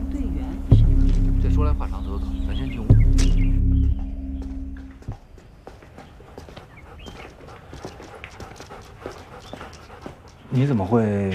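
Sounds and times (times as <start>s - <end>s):
low rumble: 0.0s - 5.0s
speech: 1.6s - 2.9s, 10.6s - 11.3s
police dog paws tapping: 3.0s - 11.3s
police dog panting: 5.0s - 11.3s.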